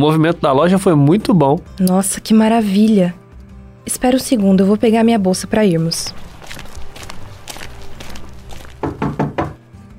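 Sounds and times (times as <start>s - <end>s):
speech: 0.0s - 3.2s, 3.9s - 6.3s
footsteps shuffling: 5.8s - 9.5s
firm knocks on a door: 8.8s - 9.6s.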